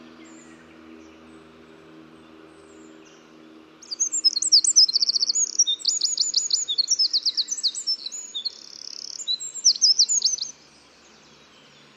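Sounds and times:
Eurasian wren Troglodytes troglodytes song: 0.0s - 11.9s
steady background noise: 0.0s - 11.9s.

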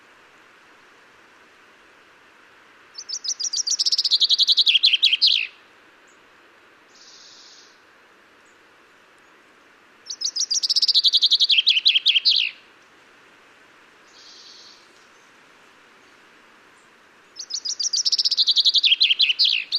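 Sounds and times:
common chaffinch Fringilla coelebs singing: 2.9s - 6.2s, 6.9s - 7.8s, 10.0s - 12.7s, 14.1s - 15.4s, 16.8s - 19.7s.

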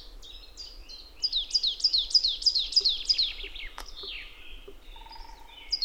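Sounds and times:
marsh tit Poecile palustris giving rapid high descending chipping notes: 1.5s - 5.8s.

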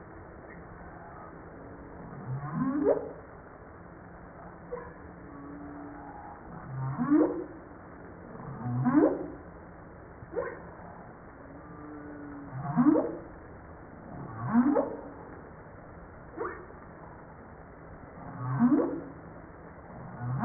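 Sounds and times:
steady background hiss: 0.0s - 20.4s
fainter humpback whale tonal calls: 0.4s - 3.2s, 4.4s - 7.7s, 8.3s - 9.4s, 10.3s - 13.3s, 14.0s - 15.3s, 16.3s - 16.8s, 18.2s - 19.2s.

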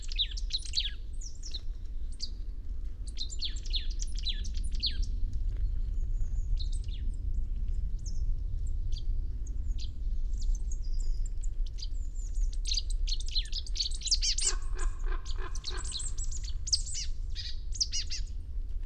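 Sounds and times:
constant low background rumble: 0.0s - 18.8s
Marsh tit Poecile palustris calling: 12.7s - 18.2s.

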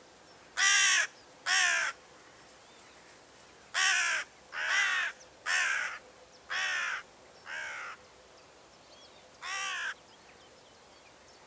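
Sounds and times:
carrion crow Corvus corone cawing: 0.6s - 2.0s, 3.7s - 8.0s, 9.4s - 10.0s.

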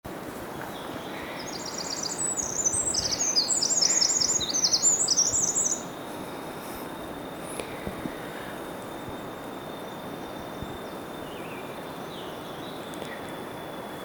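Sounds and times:
faint background hiss: 0.1s - 14.0s
Eurasian wren Troglodytes troglodytes singing: 0.6s - 13.7s.

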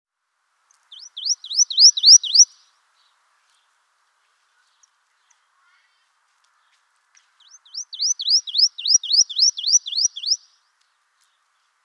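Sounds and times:
marsh tit Poecile palustris giving rapid high upslurred notes: 0.9s - 2.6s, 7.4s - 10.4s.

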